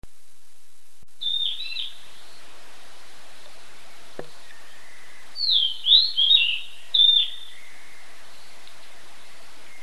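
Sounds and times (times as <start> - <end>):
bird song with whistled phrases in a forest: 1.2 - 2.6, 3.8 - 9.8.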